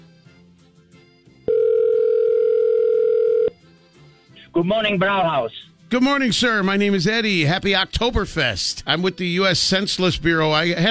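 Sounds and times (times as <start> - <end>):
telephone ringing tone: 1.5 - 3.5
speech: 4.6 - 10.8.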